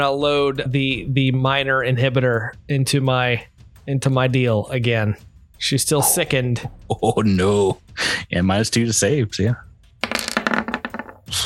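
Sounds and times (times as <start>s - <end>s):
speech: 0.0s - 9.7s
dice rolling on a hard tabletop in a tabletop game: 10.0s - 11.3s.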